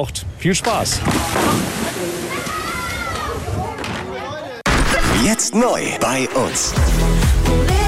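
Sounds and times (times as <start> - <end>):
speech: 0.0 - 2.1, 5.2 - 7.7
water sloshing and lapping at the beach of a lakeside bathing area at the Totenbrocksee in Beckum: 1.0 - 3.5.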